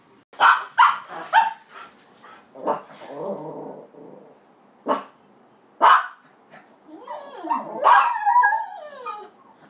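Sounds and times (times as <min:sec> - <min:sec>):
dog barking in high-pitched excitement: 0:00.4 - 0:01.6, 0:04.8 - 0:05.2, 0:05.8 - 0:06.2, 0:07.8 - 0:08.2
dog whining and yelping: 0:06.8 - 0:09.6.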